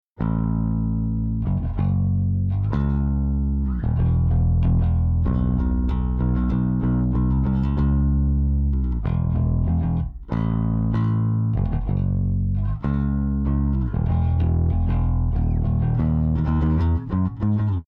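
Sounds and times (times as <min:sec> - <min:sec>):
bass with effect: 0:00.2 - 0:17.8.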